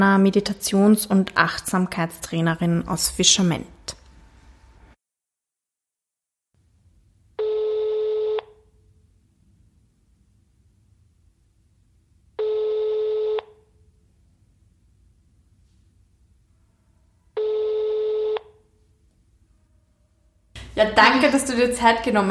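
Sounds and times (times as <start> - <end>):
speech: 0.0 - 3.8, 20.9 - 22.2
telephone keypad dialing tones: 7.4 - 8.7, 12.4 - 13.7, 17.4 - 18.6.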